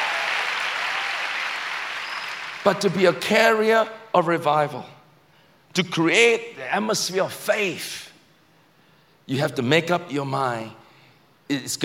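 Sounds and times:
large crowd clapping: 0.0 - 3.1
speech: 2.6 - 5.0, 5.8 - 8.1, 9.3 - 10.8, 11.5 - 11.8.

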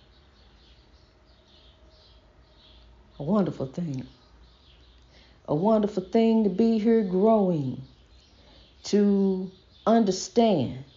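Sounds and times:
faint birdsong: 0.0 - 10.9
speech: 3.2 - 4.2, 5.5 - 7.9, 8.9 - 10.9.

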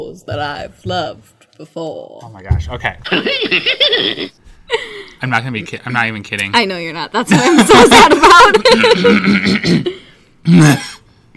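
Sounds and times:
speech: 0.0 - 11.0
laughter: 3.1 - 4.4, 7.3 - 9.4
person coughing: 8.8 - 11.0.

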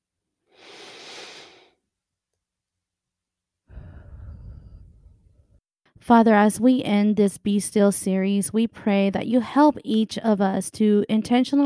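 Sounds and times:
people taking a deep breath together during a prayer: 0.6 - 1.7, 3.7 - 5.1
speech: 6.1 - 11.6.

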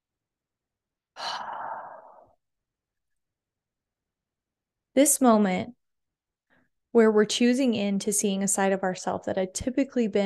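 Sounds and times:
person breathing in deeply during a guided breathing exercise: 1.2 - 2.4
speech: 5.0 - 5.8, 6.9 - 10.2.

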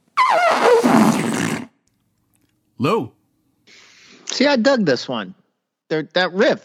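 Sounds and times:
loud fluffy fart: 0.2 - 1.8
speech: 2.8 - 3.8, 4.4 - 6.6.

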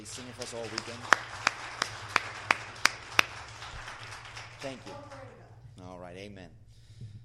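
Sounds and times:
speech: 0.0 - 1.6, 4.6 - 7.1
audience at a morning conference gathering applauding a singer: 0.0 - 5.6
low hum: 0.0 - 7.2.

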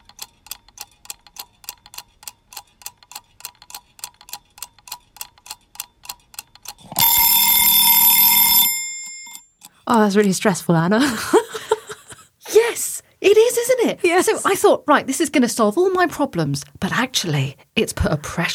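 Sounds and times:
mechanical kitchen cookery timer ticking: 0.0 - 7.8
mechanical kitchen cookery timer bell ringing: 7.0 - 9.4
speech: 10.0 - 11.5, 13.8 - 18.5
laughter: 11.0 - 12.3.

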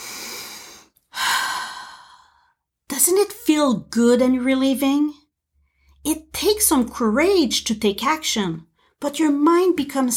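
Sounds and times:
deep breath: 0.0 - 2.6
speech: 3.1 - 5.2, 6.0 - 10.1.

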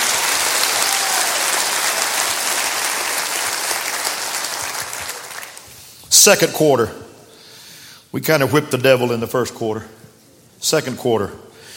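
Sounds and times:
church sermon audience clapping: 0.0 - 5.8
speech: 6.1 - 7.0, 8.1 - 10.0, 10.6 - 11.5.

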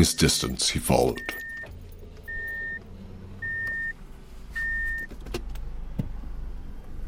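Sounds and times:
speech: 0.0 - 1.4
car reversing warning beeps: 0.0 - 2.8, 3.4 - 4.0, 4.6 - 5.1
car engine rumbling while backing out of a driveway: 0.0 - 7.0.

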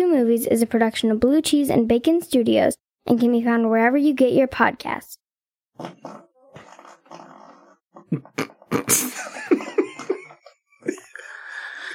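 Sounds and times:
speech: 0.0 - 5.2, 5.8 - 7.3, 8.1 - 9.7
long sputtering fart: 5.8 - 10.4
laughter: 8.8 - 11.9.

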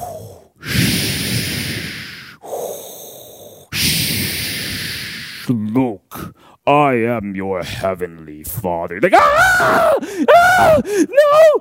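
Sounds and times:
voice imitating heavy menacing breathing: 0.0 - 5.5, 9.7 - 11.6
speech: 5.5 - 11.6.

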